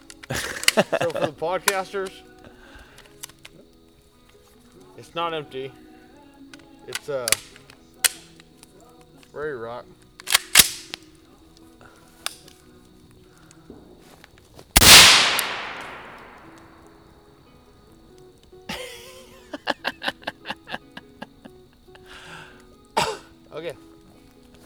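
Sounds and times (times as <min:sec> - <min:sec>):
laughter: 0:00.0 - 0:10.4, 0:18.4 - 0:24.6
quiet clicks and handling noises: 0:00.0 - 0:24.6
speech: 0:00.3 - 0:02.3, 0:05.0 - 0:05.8, 0:06.9 - 0:07.6, 0:09.3 - 0:10.0
gunshot: 0:14.8 - 0:16.8.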